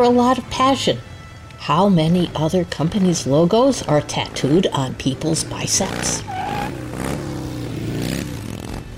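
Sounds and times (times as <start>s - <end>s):
speech: 0.0s - 6.7s
motorcycle engine revving: 3.0s - 8.9s.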